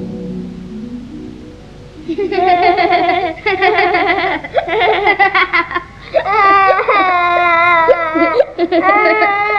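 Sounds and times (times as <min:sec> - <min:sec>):
high-pitched crying in sobbing bursts: 0:02.1 - 0:09.5.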